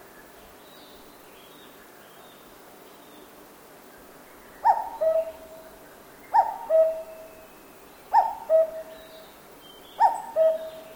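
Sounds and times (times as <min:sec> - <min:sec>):
quiet hiss: 0:00.0 - 0:10.9
cuckoo calling in a forest in Japan: 0:04.6 - 0:05.7, 0:06.3 - 0:07.4, 0:08.1 - 0:09.2, 0:10.0 - 0:10.9.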